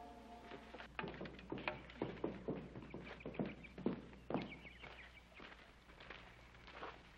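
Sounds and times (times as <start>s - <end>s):
horse walking with clopping hoofbeats: 0.4s - 7.1s.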